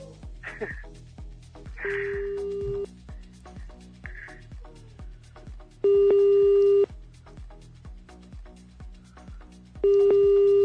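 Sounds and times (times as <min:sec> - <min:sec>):
telephone dialing tones as a phone call is placed: 0:05.9 - 0:06.9, 0:09.8 - 0:10.6.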